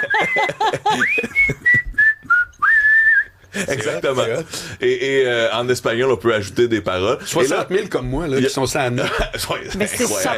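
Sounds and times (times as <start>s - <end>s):
laughter: 0.0s - 2.0s, 3.5s - 4.4s, 9.0s - 9.6s
person whistling a national anthem melody: 0.1s - 3.4s
speech: 0.2s - 1.4s, 3.6s - 10.3s.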